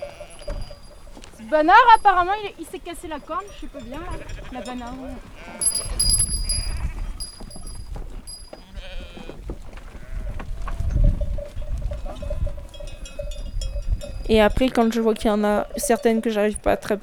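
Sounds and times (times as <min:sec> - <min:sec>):
flock of sheep bleating: 0:00.0 - 0:07.2, 0:08.6 - 0:10.8
shuffling and rustling: 0:00.0 - 0:12.8
speech: 0:01.5 - 0:05.8, 0:14.3 - 0:17.0.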